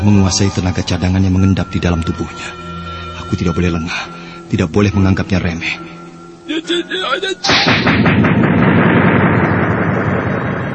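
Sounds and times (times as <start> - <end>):
speech: 0.0 - 2.7, 3.3 - 8.4
long rumbling echo of an explosion: 7.5 - 10.7
thunderous whip-crack explosion: 7.5 - 10.7.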